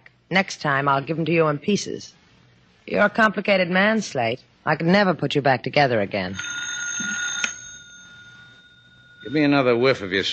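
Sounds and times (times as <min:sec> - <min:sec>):
speech: 0:00.3 - 0:02.2, 0:02.9 - 0:07.1, 0:09.2 - 0:10.3
telephone bell ringing: 0:06.3 - 0:10.0.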